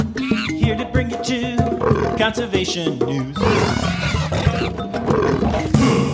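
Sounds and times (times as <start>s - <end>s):
wild animal calls: 0.0s - 0.6s, 1.7s - 2.3s, 3.3s - 5.8s
speech: 2.2s - 5.7s
big-cat roars in an animal theme sting: 3.4s - 5.8s.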